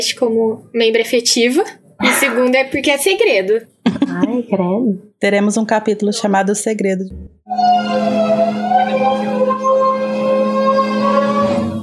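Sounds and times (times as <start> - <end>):
speech: 0.0 - 9.4
garbage truck on the street whining and droning: 7.5 - 11.8.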